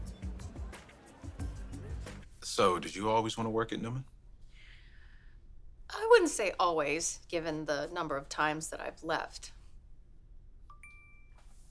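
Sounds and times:
quiet low hum: 0:01.8 - 0:11.7
speech: 0:02.4 - 0:04.1, 0:06.2 - 0:09.6
mobile phone notification ding: 0:10.7 - 0:11.4
soft rustle: 0:11.3 - 0:11.7.

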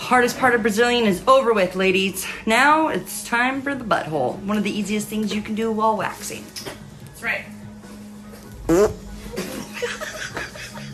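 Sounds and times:
speech: 0:00.1 - 0:07.6
short loud buzzy fart during waxing: 0:08.6 - 0:09.2
bursts of laughter: 0:09.4 - 0:10.9.

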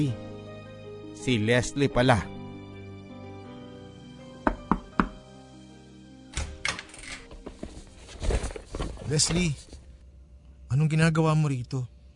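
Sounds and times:
speech: 0:00.0 - 0:00.2, 0:01.2 - 0:02.3, 0:09.1 - 0:09.7, 0:10.7 - 0:12.0
soft sustained music bed: 0:00.0 - 0:12.1
quick solid knocks on a bedroom door: 0:04.4 - 0:05.2
rustling and shuffling noise: 0:07.2 - 0:10.0.

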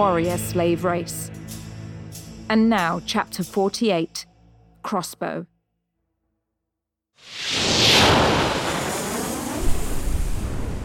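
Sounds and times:
speech: 0:00.0 - 0:01.6, 0:02.5 - 0:05.5
roaring jet thrust from scramjet boosters: 0:07.2 - 0:10.8.

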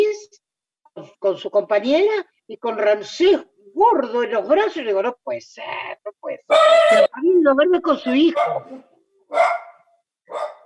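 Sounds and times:
speech: 0:01.0 - 0:09.6
female dog barking: 0:06.5 - 0:07.1, 0:08.2 - 0:10.6.

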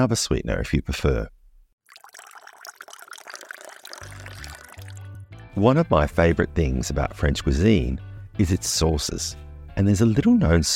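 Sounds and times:
speech: 0:00.0 - 0:01.4, 0:05.6 - 0:10.7
mint tea pouring from a teapot into a cup: 0:01.8 - 0:05.1.

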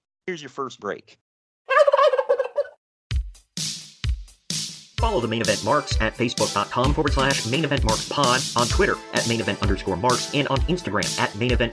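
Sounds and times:
speech: 0:00.3 - 0:01.2, 0:05.0 - 0:11.7
turkey gobbling: 0:01.7 - 0:02.8.

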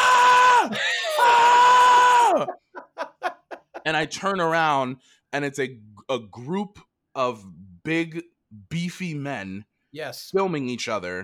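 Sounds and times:
voice imitating men screaming while lifting free weights: 0:00.0 - 0:02.6
laughter: 0:02.3 - 0:04.1
speech: 0:03.9 - 0:11.2.

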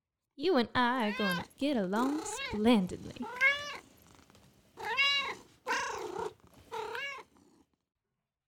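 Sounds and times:
speech: 0:00.4 - 0:03.4
large gray cat meowing: 0:01.0 - 0:01.5, 0:03.2 - 0:03.9, 0:04.8 - 0:07.4
large gray cat purring: 0:01.5 - 0:07.8.

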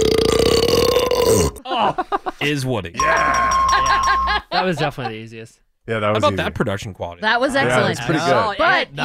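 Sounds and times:
man belching: 0:00.0 - 0:01.7, 0:03.0 - 0:03.6
laughter: 0:01.6 - 0:02.4, 0:03.0 - 0:05.3
speech: 0:01.8 - 0:09.0.

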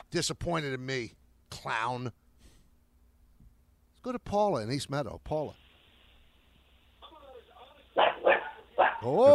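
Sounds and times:
speech: 0:00.1 - 0:02.2, 0:04.0 - 0:05.6, 0:09.0 - 0:09.3
dog barking in a telephone caller's background: 0:08.0 - 0:09.2.

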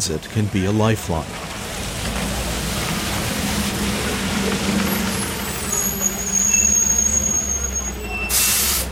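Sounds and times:
speech: 0:00.0 - 0:01.6
heavy bus engines idling at an outdoor city bus depot: 0:00.0 - 0:08.9
thin bus brake squeal: 0:04.6 - 0:08.9
bus air brakes hissing: 0:05.6 - 0:08.9.

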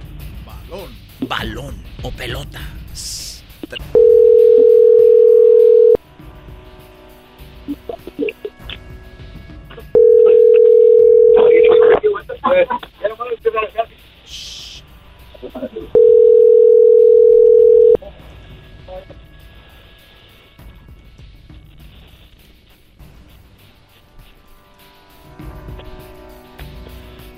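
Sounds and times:
speech: 0:00.7 - 0:04.7
telephone ringback tones of an unanswered call: 0:04.0 - 0:06.0, 0:10.0 - 0:12.0, 0:16.0 - 0:18.0.

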